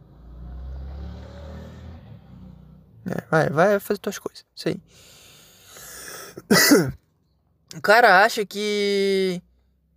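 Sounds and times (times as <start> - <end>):
motorcycle engine roaring as a man rides past: 0.0 - 3.0
speech: 3.0 - 5.2, 6.5 - 7.0, 7.7 - 9.5.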